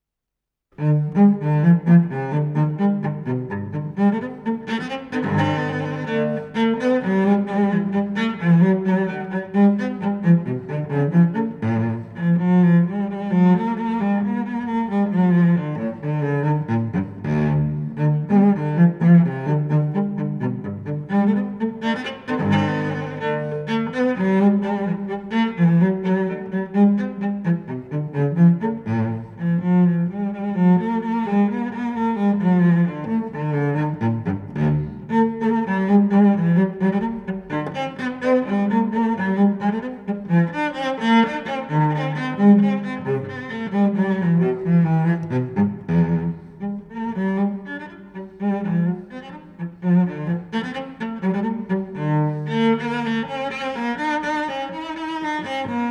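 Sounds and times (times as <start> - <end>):
solo cello playing a gigue: 0.8 - 55.9.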